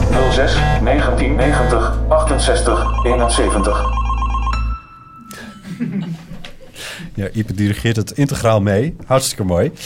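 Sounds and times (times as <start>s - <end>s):
speech: 0.3s - 4.0s, 6.8s - 9.8s
loud tonal telephone ring with bright harmonic chime: 2.6s - 5.2s
light chuckling: 5.3s - 6.8s.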